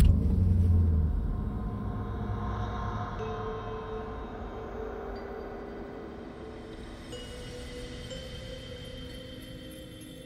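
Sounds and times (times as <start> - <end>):
car engine turning over and idling: 0.0 - 2.8.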